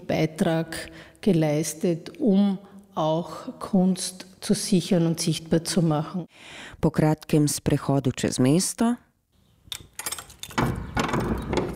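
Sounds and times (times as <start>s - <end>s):
speech: 0.1s - 9.0s
heavy cellar door being pulled open: 10.0s - 11.7s.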